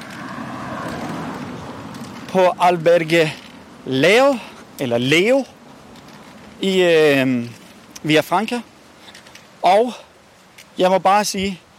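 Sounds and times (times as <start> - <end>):
car passing by: 0.0 - 2.3
speech: 2.3 - 5.5, 6.6 - 8.7, 9.6 - 10.0, 10.8 - 11.6.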